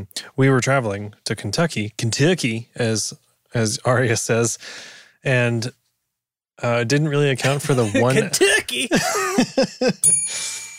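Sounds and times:
speech: 0.0s - 5.8s, 6.6s - 10.6s
laughter: 7.4s - 10.1s
small bell ringing: 10.0s - 10.7s.

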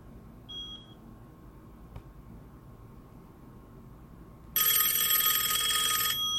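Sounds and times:
loud buzzy electronic telephone ringing unanswered: 4.6s - 6.3s.

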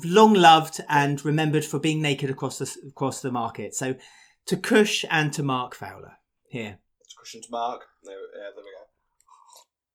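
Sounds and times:
speech: 0.0s - 8.8s
person slurping a sip of tea: 9.1s - 9.9s.

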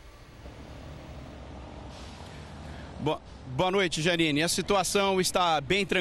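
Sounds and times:
road traffic passing at the toll plaza of the Rio-Niteroi bridge in Rio de Janeiro Brazil: 0.0s - 6.0s
air brake hiss: 1.8s - 3.4s
speech: 3.0s - 6.0s.

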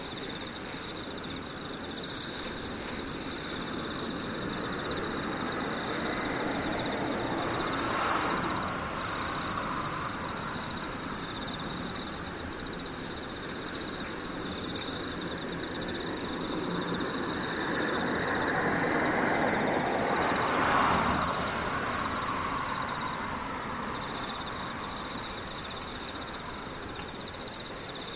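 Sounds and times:
insects trilling with thin high whine: 0.0s - 28.1s
dense low rumble of traffic: 1.7s - 27.6s
vehicles passing: 3.6s - 12.5s, 15.2s - 25.9s.

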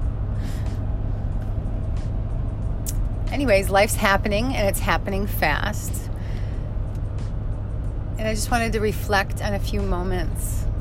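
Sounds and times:
car engine drone: 0.0s - 10.8s
road noise from inside a moving car: 0.0s - 10.8s
speech: 3.3s - 6.0s, 8.2s - 10.6s.

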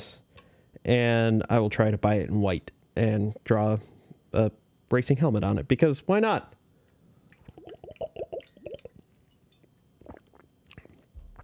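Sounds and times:
person breathing: 0.3s - 0.8s
speech: 0.8s - 6.6s
person drinking from a water bottle: 7.3s - 9.1s, 10.0s - 11.4s
person swallowing: 7.4s - 9.0s, 10.0s - 11.4s.

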